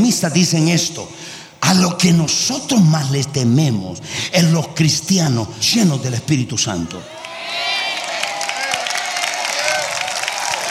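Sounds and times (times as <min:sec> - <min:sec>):
speech: 0:00.0 - 0:07.7
large crowd applauding: 0:07.0 - 0:10.6.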